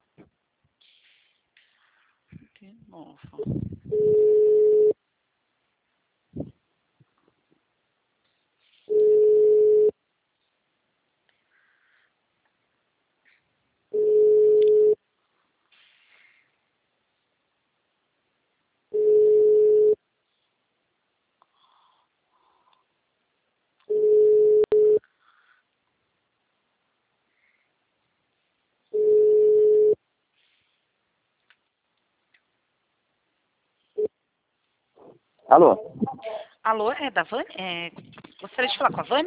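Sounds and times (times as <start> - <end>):
speech: 2.7 - 4.2, 35.1 - 39.2
telephone line tone beeping as a call waits to connect: 3.9 - 5.0, 8.9 - 9.9, 14.0 - 15.0, 19.0 - 20.0, 23.9 - 25.0, 29.0 - 30.0.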